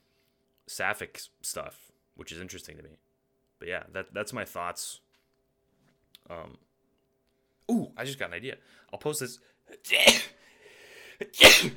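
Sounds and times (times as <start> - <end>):
speech: 0.7 - 5.0, 6.3 - 6.7, 7.7 - 10.4, 11.2 - 11.7
person sneezing: 9.8 - 10.5, 11.2 - 11.7
faint breath: 10.4 - 11.2.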